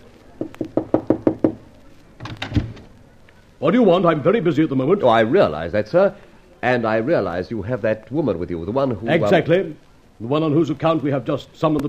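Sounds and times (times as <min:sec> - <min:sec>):
knocking on the door of a manager's office: 0:00.4 - 0:01.6
speech: 0:03.6 - 0:11.8.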